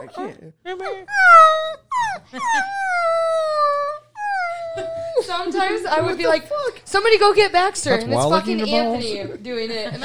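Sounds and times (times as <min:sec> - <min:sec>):
speech: 0:00.0 - 0:03.0, 0:04.8 - 0:10.0
person imitating a pit bull crying at a back door: 0:00.8 - 0:05.3.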